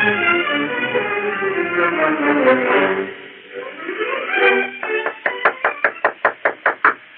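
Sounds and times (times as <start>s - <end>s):
orchestral music: 0.0s - 6.4s
firm loud knocks on a door: 4.8s - 7.0s.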